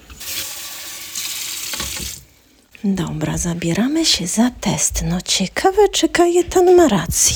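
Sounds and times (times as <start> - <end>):
cold water running from a kitchen tap: 0.0 - 2.4
speech: 2.8 - 7.3.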